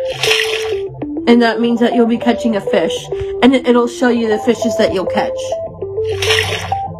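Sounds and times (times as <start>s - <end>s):
synthetic drippy water splashes in a video game: 0.1s - 0.9s, 6.0s - 6.9s
synthetic squishy bursts in a video game: 0.1s - 0.9s, 6.0s - 6.8s
speech: 1.3s - 5.6s.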